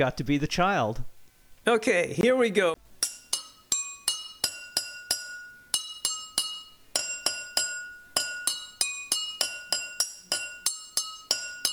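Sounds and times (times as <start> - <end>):
speech: 0.0 - 2.8
metal spoon striking water-tuned drinking glasses: 3.0 - 11.7.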